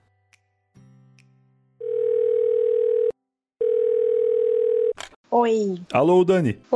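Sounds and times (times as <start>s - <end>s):
phone dial tones: 1.8s - 5.0s
speech: 5.3s - 6.7s.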